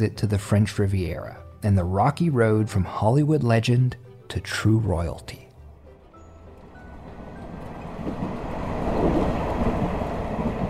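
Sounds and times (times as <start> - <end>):
speech: 0.0 - 5.4
train rolling on rails with a rhythmic clatter: 5.9 - 10.6.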